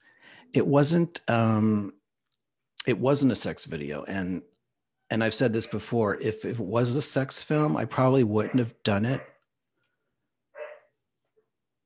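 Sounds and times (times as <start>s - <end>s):
speech: 0.5s - 2.0s, 2.8s - 4.5s, 5.1s - 9.3s
puppy yapping: 10.6s - 10.9s.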